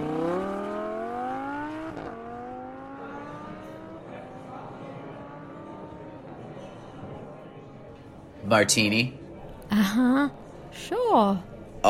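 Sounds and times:
sports car engine revving up with a gear change: 0.0 - 6.5
speech: 8.5 - 9.2, 9.8 - 11.8.

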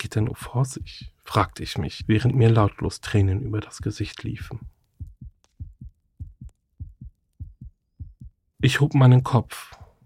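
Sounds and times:
speech: 0.1 - 4.8, 8.6 - 9.8
fast pounding heartbeat: 0.6 - 2.7, 3.3 - 8.4.

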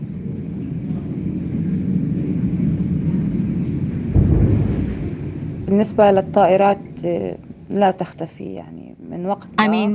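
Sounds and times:
low rumble and drone of aircraft overhead: 0.0 - 7.7
heavy bomb explosion boom: 3.8 - 6.1
speech: 5.7 - 9.9.

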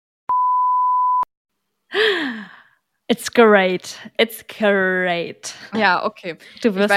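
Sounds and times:
censor bleep: 0.3 - 1.3
speech: 3.1 - 6.9.

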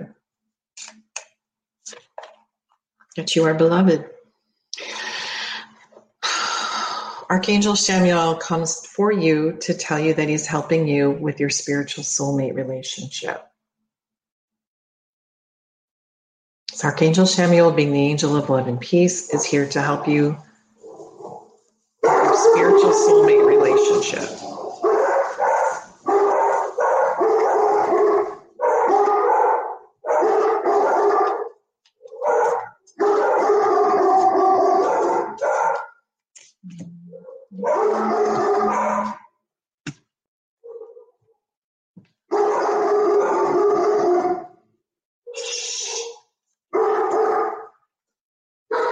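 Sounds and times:
speech: 3.2 - 4.2, 7.3 - 13.5, 16.8 - 20.5, 22.6 - 24.5
dog barking and howling: 20.8 - 36.0, 37.1 - 39.3, 42.3 - 44.6, 46.8 - 47.7, 48.7 - 48.9.

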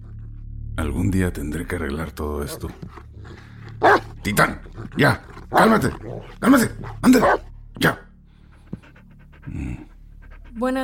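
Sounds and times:
speech: 0.8 - 8.0, 9.5 - 9.9, 10.6 - 10.8
dog panting: 2.5 - 7.5, 8.3 - 10.8.

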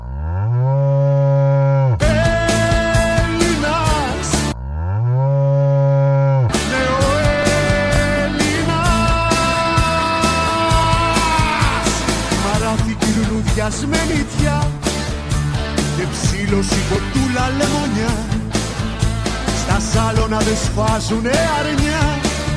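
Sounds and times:
cow mooing: 0.0 - 2.0, 4.6 - 6.6
rhythmic busy music with a steady beat: 2.0 - 4.6, 6.5 - 22.5
speech: 20.4 - 22.2.

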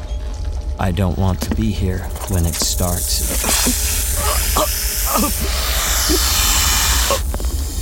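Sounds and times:
speech: 0.8 - 4.0, 4.6 - 6.4
snakes hissing: 2.5 - 7.8.

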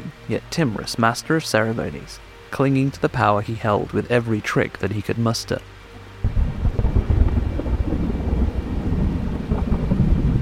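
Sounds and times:
steady rain: 0.0 - 10.4
speech: 0.3 - 5.8
sudden thunder crash rolling into heavy rumble: 6.2 - 10.4.

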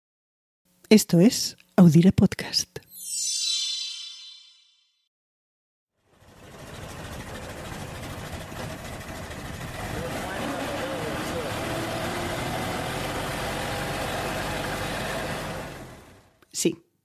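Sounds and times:
speech: 0.9 - 2.8, 16.6 - 16.8
bright chime: 2.9 - 4.9
car engine running: 6.0 - 16.2.

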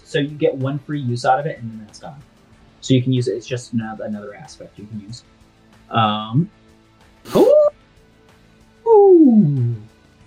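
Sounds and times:
speech: 0.1 - 6.6, 7.2 - 7.5
person imitating an animal howl of a game character: 7.3 - 7.7, 8.9 - 9.9.

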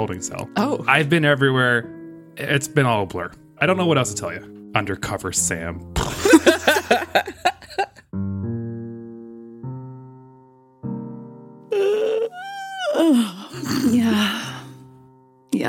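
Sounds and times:
speech: 0.0 - 8.3
laughter: 6.1 - 8.0
long drawn-out voiced yawn: 11.7 - 14.8.

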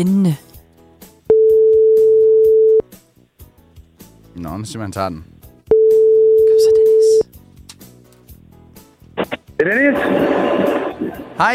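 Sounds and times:
speech: 0.0 - 0.5, 4.4 - 5.3, 9.6 - 10.6, 11.4 - 11.5
telephone ringback tone while a call is placed: 1.3 - 2.8, 5.7 - 7.2.

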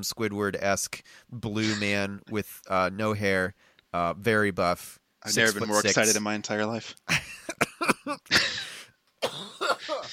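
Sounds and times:
speech: 0.0 - 8.6
harsh raspy coughing fit: 7.5 - 10.1.

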